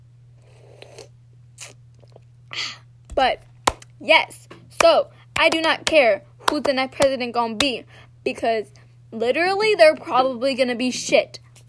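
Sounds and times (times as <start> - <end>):
steady low electrical hum: 0.0 - 11.6
person sipping a drink with a quick slurp: 0.4 - 2.3
speech: 2.6 - 11.4.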